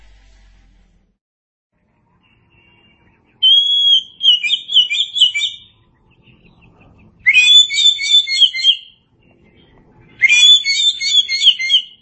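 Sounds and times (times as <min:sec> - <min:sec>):
Oriental magpie-robin singing: 0:03.4 - 0:09.0, 0:10.2 - 0:12.0.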